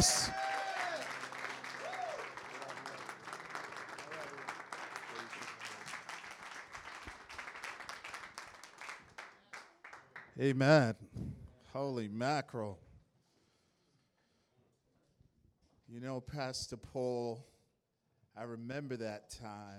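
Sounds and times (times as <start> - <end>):
speech: 0.0 - 0.4, 10.4 - 12.8, 15.9 - 17.5, 18.4 - 19.7
people whooping: 0.0 - 6.0
audience applause: 0.0 - 10.4.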